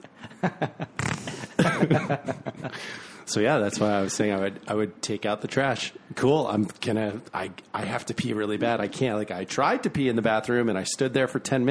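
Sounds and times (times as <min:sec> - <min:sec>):
breathy snickering and chuckles: 0:00.2 - 0:02.8
speech: 0:00.4 - 0:00.8, 0:01.9 - 0:11.6
vocal imitation of a small fart: 0:00.9 - 0:01.5.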